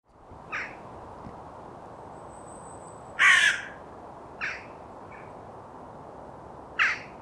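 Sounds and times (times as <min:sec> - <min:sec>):
carrion crow Corvus corone cawing: 0:00.5 - 0:00.8, 0:03.2 - 0:03.8, 0:04.4 - 0:04.7, 0:06.8 - 0:07.1.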